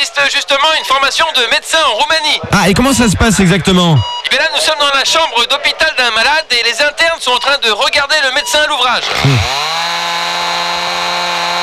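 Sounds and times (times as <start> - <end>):
speech: 0.0 - 10.4
chainsaw running in a hospital room in Romania to amputate a leg: 9.0 - 11.6.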